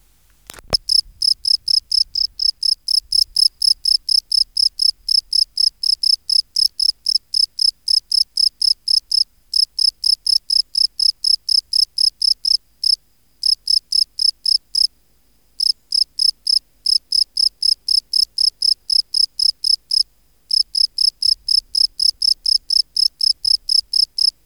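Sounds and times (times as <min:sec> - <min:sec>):
sharp click: 0:00.5 - 0:00.8
European field cricket Gryllus campestris chirping: 0:00.5 - 0:14.9, 0:15.6 - 0:24.4.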